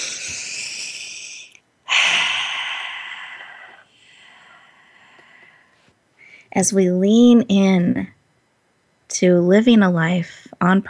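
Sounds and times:
deep breath in and out during a guided talk: 0.0s - 6.5s
speech: 6.6s - 8.2s, 9.2s - 10.8s.

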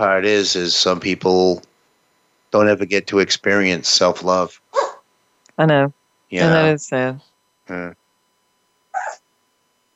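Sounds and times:
speech: 0.0s - 1.7s, 2.5s - 4.7s, 5.6s - 8.0s
dog sneezing: 9.0s - 9.2s.

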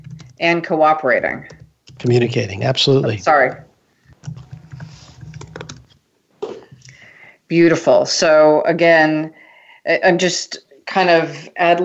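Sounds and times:
typing on a computer keyboard: 0.0s - 0.4s, 1.4s - 2.3s, 3.5s - 6.0s
speech: 0.4s - 3.6s, 7.5s - 11.8s.

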